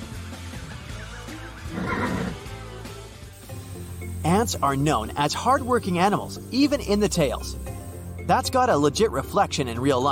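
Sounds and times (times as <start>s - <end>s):
horse neighing: 1.7s - 2.4s
speech: 4.2s - 7.7s, 8.3s - 10.0s.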